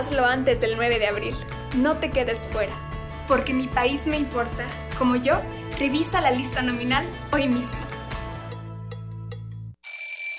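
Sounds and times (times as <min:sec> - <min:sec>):
speech: 0:00.0 - 0:07.9
alarm clock ringing with electronic tone: 0:09.8 - 0:10.3
shrill high-pitched buzzing beep of an alarm clock: 0:09.8 - 0:10.3.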